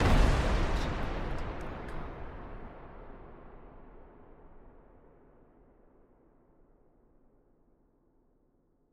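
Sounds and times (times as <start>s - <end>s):
explosion blast: 0.0s - 4.6s.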